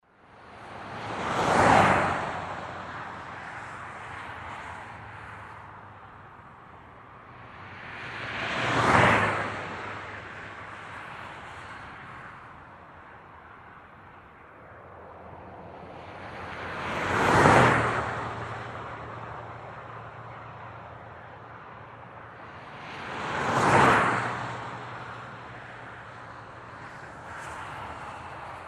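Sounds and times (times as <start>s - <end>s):
road noise: 0.0s - 28.6s.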